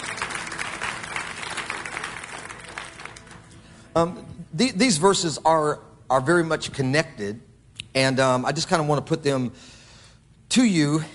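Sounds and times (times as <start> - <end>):
audience applauding: 0.0 - 3.8
speech: 4.0 - 9.8, 10.5 - 11.1.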